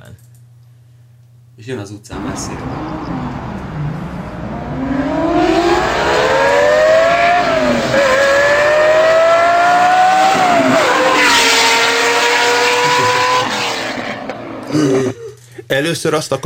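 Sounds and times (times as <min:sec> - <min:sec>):
speech: 0:01.6 - 0:03.5, 0:15.9 - 0:16.4
Lamborghini Countach sports car engine revving and driving past: 0:02.1 - 0:14.6.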